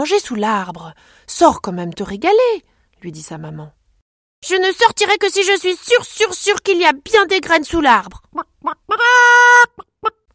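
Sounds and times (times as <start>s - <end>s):
speech: 0.0s - 3.8s, 4.4s - 10.2s
hen clucking and cackling: 8.3s - 10.2s.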